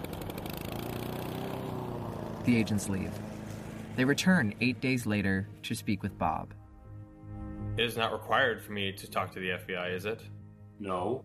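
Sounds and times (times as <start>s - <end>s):
small engine droning: 0.0s - 6.3s
speech: 2.4s - 3.3s, 4.0s - 6.6s, 7.8s - 11.2s.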